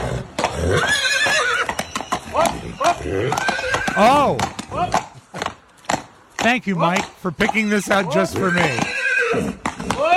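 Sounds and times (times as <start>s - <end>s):
horse whinnying: 0.0s - 5.1s, 8.0s - 10.1s
horse hooves clip-clopping: 0.0s - 10.1s
speech: 0.7s - 1.0s, 4.0s - 5.0s, 6.4s - 9.7s.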